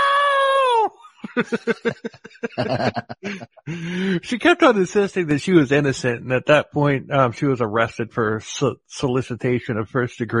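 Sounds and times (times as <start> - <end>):
woman screeching: 0.0 - 1.0
woman sobbing: 0.0 - 4.2
laughter: 0.9 - 7.7
speech: 1.4 - 10.3.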